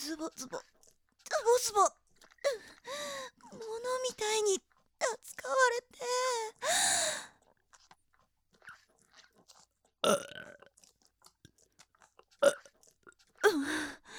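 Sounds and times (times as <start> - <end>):
speech: 0.0 - 0.8, 1.4 - 7.3, 10.0 - 10.6, 13.4 - 14.1
faint mouth noises: 0.0 - 14.1
loud croaky burps forced up from the stomach: 10.0 - 10.7, 12.4 - 12.7.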